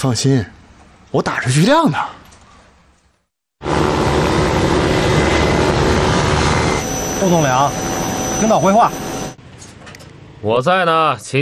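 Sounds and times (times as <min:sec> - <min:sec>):
speech: 0:00.0 - 0:02.2, 0:07.2 - 0:09.1, 0:10.4 - 0:11.3
airplane engine roar with propeller rumble: 0:03.6 - 0:09.4.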